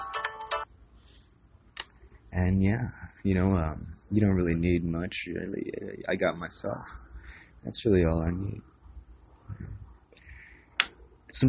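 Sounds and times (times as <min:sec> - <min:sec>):
phone ringtone: 0:00.0 - 0:00.7
speech: 0:02.4 - 0:07.0, 0:07.6 - 0:08.7.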